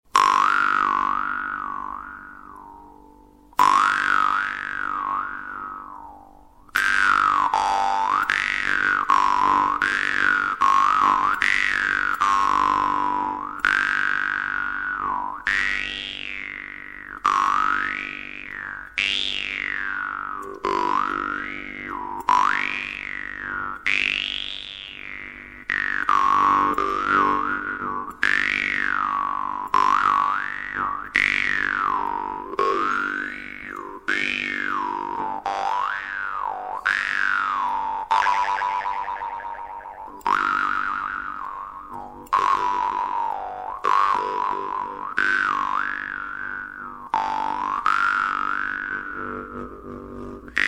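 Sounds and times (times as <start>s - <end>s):
Russian vargan jaw harp: 0.1s - 50.6s.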